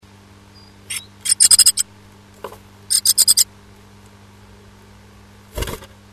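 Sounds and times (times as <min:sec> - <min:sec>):
bird nest-building calls at a nest box: 0:00.5 - 0:01.9, 0:02.9 - 0:03.5.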